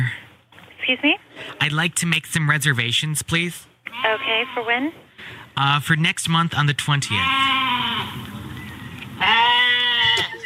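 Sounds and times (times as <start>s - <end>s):
faint hum: 0.0s - 10.4s
speech: 0.9s - 7.6s
goat bleating: 3.9s - 4.8s, 7.1s - 8.2s, 9.2s - 10.4s.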